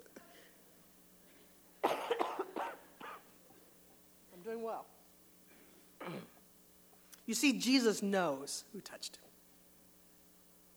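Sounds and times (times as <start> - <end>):
person coughing harshly: 1.8 - 3.3, 5.5 - 6.4
speech: 4.7 - 5.0, 7.3 - 9.3.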